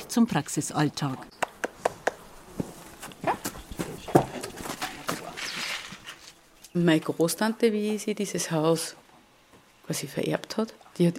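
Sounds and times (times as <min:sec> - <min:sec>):
speech: 0:00.1 - 0:01.4, 0:06.8 - 0:09.0, 0:09.9 - 0:11.1
horse hooves clopping at a walking pace: 0:01.4 - 0:06.4.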